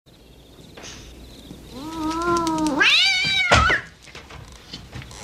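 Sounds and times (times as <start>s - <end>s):
cat meowing nervously: 1.7s - 4.0s.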